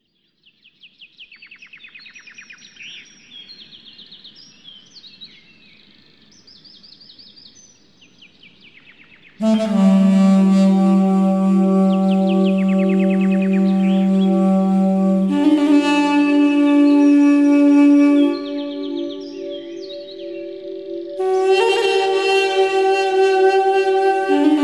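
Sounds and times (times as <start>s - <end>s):
nature ambience: 0.0s - 24.6s
duduk playing at 432 Hz: 9.4s - 24.6s.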